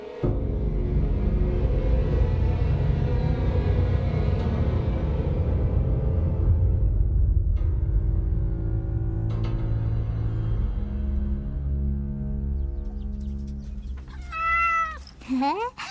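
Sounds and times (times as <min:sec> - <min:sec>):
steady low droning background: 0:00.2 - 0:14.3
cat meowing: 0:14.0 - 0:15.2.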